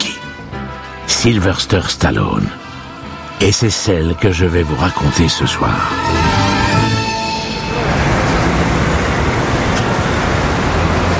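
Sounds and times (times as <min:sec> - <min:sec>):
speech: 0:01.2 - 0:02.6, 0:03.4 - 0:06.4
dense city street traffic: 0:05.7 - 0:11.1
distant police sirens: 0:05.8 - 0:11.1
droning tonal vehicle engine: 0:06.2 - 0:11.1.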